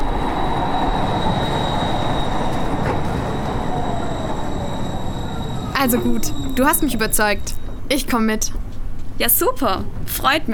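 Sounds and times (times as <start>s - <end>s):
thin sustained metallic squeal of a tram: 0.0s - 8.0s
tram wheels rumbling on rails at a stop: 0.0s - 10.5s
speech: 5.8s - 8.6s, 9.2s - 10.5s.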